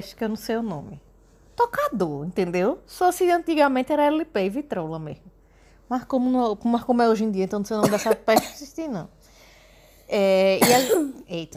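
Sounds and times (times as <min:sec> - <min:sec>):
speech: 0:00.0 - 0:05.3, 0:05.9 - 0:09.2, 0:10.1 - 0:11.5
person sneezing: 0:10.6 - 0:11.2.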